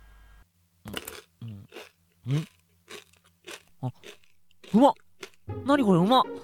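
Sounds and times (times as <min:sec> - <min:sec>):
chewing and mouth noises eating rice porridge: 0:00.9 - 0:05.5
speech: 0:02.3 - 0:02.6, 0:03.8 - 0:05.0, 0:05.7 - 0:06.4.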